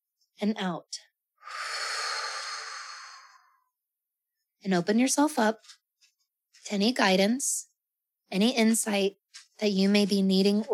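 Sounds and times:
speech: 0:00.4 - 0:01.6, 0:04.6 - 0:05.8, 0:06.6 - 0:07.7, 0:08.3 - 0:10.7
deep cleansing breath in and out during a guided meditation: 0:01.4 - 0:03.7.

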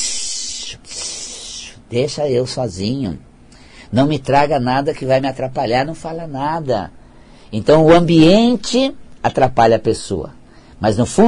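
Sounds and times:
voice imitating the chest wheeze of bronchitis: 0:00.0 - 0:01.8
speech: 0:01.9 - 0:03.3, 0:03.9 - 0:11.2.

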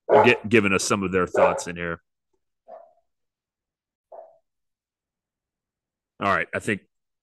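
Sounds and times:
dog barking: 0:00.0 - 0:00.5, 0:01.3 - 0:01.8, 0:02.7 - 0:03.0, 0:04.1 - 0:04.4
speech: 0:00.2 - 0:02.1, 0:06.2 - 0:06.9.

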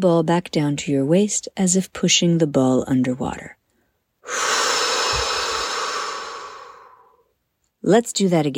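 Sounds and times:
speech: 0:00.0 - 0:03.6, 0:04.2 - 0:04.6, 0:07.8 - 0:08.5
slow deep inhale and exhale during a mindfulness breathing exercise: 0:03.7 - 0:07.3.

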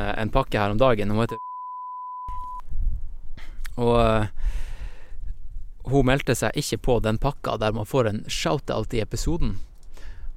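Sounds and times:
speech: 0:00.0 - 0:01.5, 0:03.8 - 0:04.7, 0:05.9 - 0:09.7
high-pitched censor bleep covering a name: 0:01.3 - 0:02.6.

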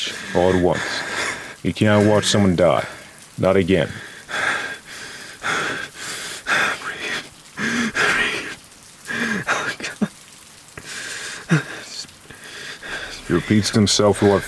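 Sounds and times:
person breathing heavily in ragged gasps and shaky exhales: 0:00.0 - 0:01.6, 0:03.9 - 0:09.7, 0:10.8 - 0:14.4
steady rain: 0:00.0 - 0:14.4
water drips: 0:00.0 - 0:14.4
speech: 0:00.1 - 0:01.0, 0:01.6 - 0:04.1, 0:13.3 - 0:14.4.

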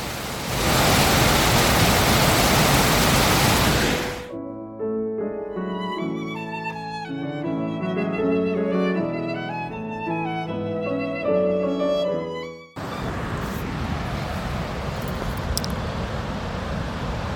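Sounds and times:
rushing river in a park: 0:00.0 - 0:04.3, 0:12.8 - 0:17.3
music: 0:04.3 - 0:12.8.

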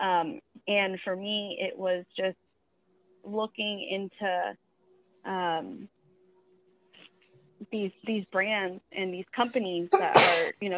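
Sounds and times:
speech: 0:00.1 - 0:02.4, 0:03.2 - 0:04.6, 0:05.2 - 0:06.0, 0:07.6 - 0:10.7
person sneezing: 0:09.9 - 0:10.5.

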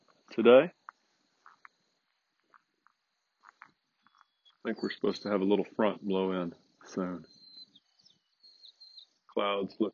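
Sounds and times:
faint high-pitched bird chirps outdoors: 0:00.0 - 0:09.9
speech: 0:00.4 - 0:00.8, 0:04.6 - 0:07.3, 0:09.4 - 0:09.9.

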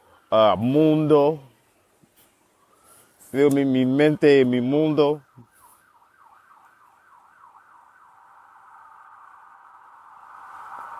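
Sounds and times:
speech: 0:00.3 - 0:01.5, 0:03.3 - 0:05.5
emergency vehicle sirens wailing outside: 0:02.6 - 0:10.9.

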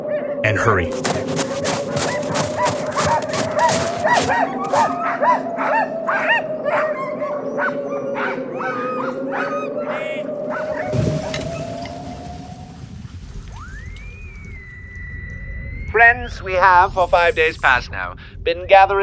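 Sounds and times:
speech: 0:00.4 - 0:11.0, 0:16.0 - 0:19.0
sled dog team barking, yipping and whimpering: 0:01.3 - 0:12.0.

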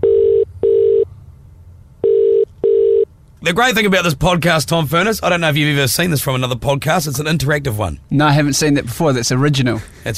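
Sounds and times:
telephone dialing tones as someone makes a phone call: 0:00.0 - 0:01.0, 0:02.0 - 0:03.1
speech: 0:03.4 - 0:10.1.

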